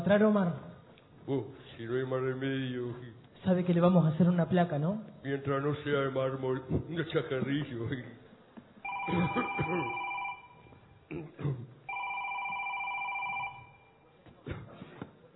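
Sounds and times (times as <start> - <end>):
speech: 0.1 - 0.7, 1.3 - 8.2, 9.0 - 10.0, 11.1 - 11.7
mobile phone ringing in electronic bursts: 8.8 - 10.8, 11.9 - 14.0.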